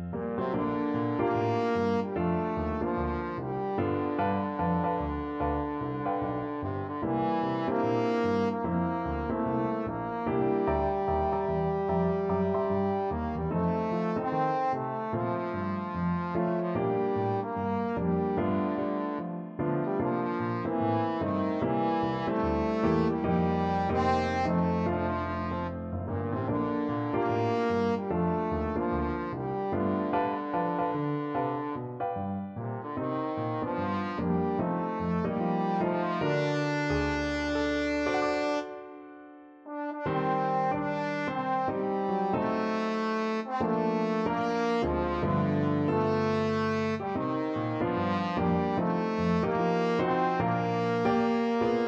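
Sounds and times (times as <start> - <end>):
trombone: 0.1 - 38.8, 39.7 - 51.8.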